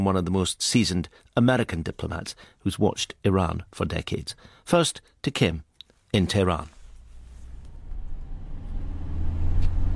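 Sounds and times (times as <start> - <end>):
speech: 0.0 - 6.8
car driving through the streets of Tehran: 6.9 - 9.9.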